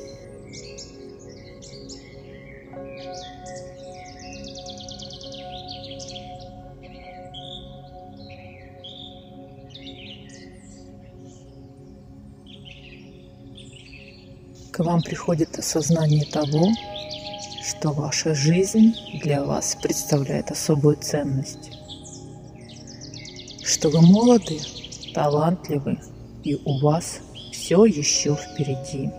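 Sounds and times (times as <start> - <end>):
several birds singing and chirping in a forest: 0.0 - 29.1
speech: 14.8 - 16.9, 17.8 - 21.7, 23.8 - 29.1.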